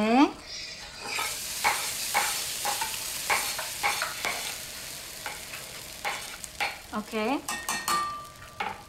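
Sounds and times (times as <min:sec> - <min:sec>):
onions sizzling in hot oil in a pan for adobo: 0:00.0 - 0:08.8
wooden spoon stirring and scraping in a pan: 0:00.8 - 0:06.8
speech: 0:07.0 - 0:07.6.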